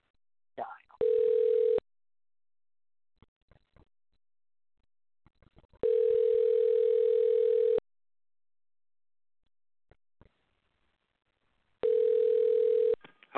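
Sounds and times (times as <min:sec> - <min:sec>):
telephone line ringing tone on the caller's end: 0:01.0 - 0:01.8, 0:05.8 - 0:07.8, 0:11.8 - 0:13.0.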